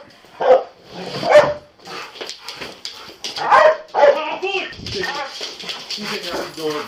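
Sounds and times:
police dog barking: 0:00.4 - 0:01.7, 0:03.4 - 0:04.3.

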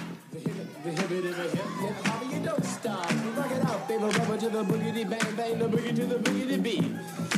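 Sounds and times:
early hip-hop record with party voices over percussive hits: 0:00.0 - 0:07.3.

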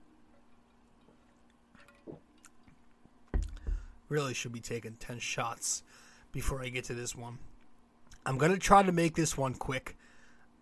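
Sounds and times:
bottle set down with a sharp bump: 0:03.3 - 0:03.9
speech: 0:04.1 - 0:07.5, 0:08.2 - 0:10.0.

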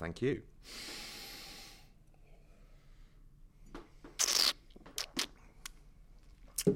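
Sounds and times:
soft breaths: 0:00.6 - 0:04.1
quick slurping sips of wine being tasted: 0:04.2 - 0:05.4.

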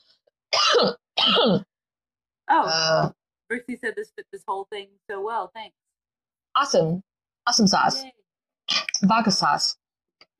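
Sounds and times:
person coughing after inhaling while drinking: 0:00.6 - 0:01.6
speech: 0:00.8 - 0:01.7, 0:02.5 - 0:05.9, 0:06.6 - 0:09.8.

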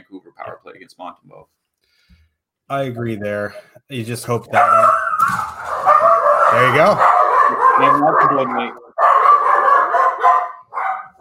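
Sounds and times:
speech: 0:00.8 - 0:01.6, 0:02.7 - 0:09.1
several dogs barking and yapping: 0:04.5 - 0:11.1.

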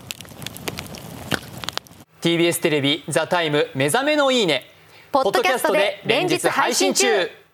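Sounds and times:
crackling campfire: 0:00.0 - 0:02.1
speech: 0:02.2 - 0:07.4.

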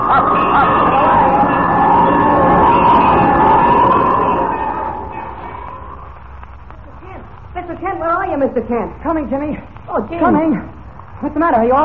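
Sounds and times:
alarm bell rung by a person in trouble to call for help: 0:00.0 - 0:06.0
speech: 0:08.4 - 0:11.8.

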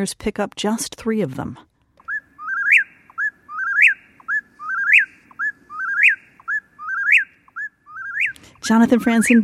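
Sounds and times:
speech: 0:00.0 - 0:01.7, 0:08.7 - 0:09.4
eastern whippoorwill singing in Massachusetts: 0:02.0 - 0:09.4.

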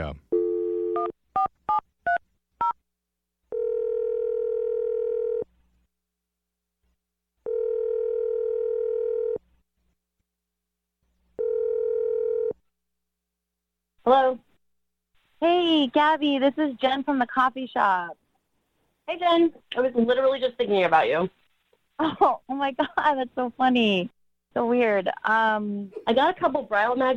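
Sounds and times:
phone dial tone: 0:00.3 - 0:01.5, 0:03.5 - 0:05.5, 0:07.4 - 0:09.4, 0:11.4 - 0:12.6
long phone ringing tones: 0:00.3 - 0:02.8, 0:03.5 - 0:05.5, 0:07.4 - 0:09.4, 0:11.4 - 0:12.6
speech: 0:15.8 - 0:18.2, 0:19.1 - 0:21.4, 0:22.0 - 0:27.1.

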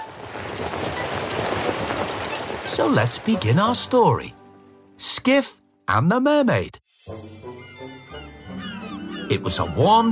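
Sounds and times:
railboat sailing through water: 0:00.0 - 0:04.9
speech: 0:02.7 - 0:04.4, 0:05.0 - 0:07.2, 0:09.3 - 0:10.1.

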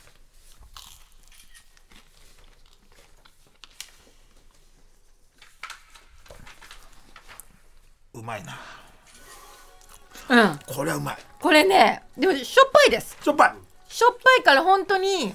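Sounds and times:
crunchy biting and chewing of a salty bread snack: 0:00.0 - 0:03.6, 0:09.2 - 0:10.8
speech: 0:08.2 - 0:08.8, 0:10.3 - 0:15.3.

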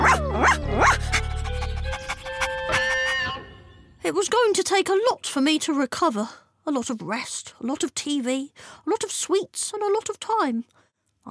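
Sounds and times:
dog barking: 0:00.0 - 0:03.2
speech: 0:04.6 - 0:11.2.

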